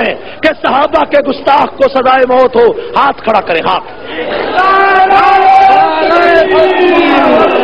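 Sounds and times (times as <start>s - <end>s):
speech: 0.1s - 5.3s, 6.4s - 7.6s
large crowd chanting slogans in unison: 4.1s - 7.6s.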